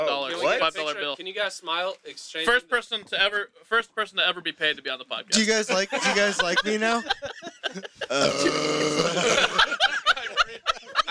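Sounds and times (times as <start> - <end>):
speech: 0.0 - 9.8
people snickering and chuckling: 5.8 - 11.0
loud rumbling burp after chugging beer: 8.1 - 9.5.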